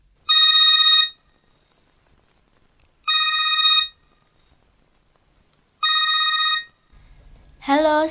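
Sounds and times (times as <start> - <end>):
telephone ringing with an electronic trill: 0.3 - 1.4, 3.0 - 4.2, 5.8 - 6.9
speech: 7.7 - 8.0.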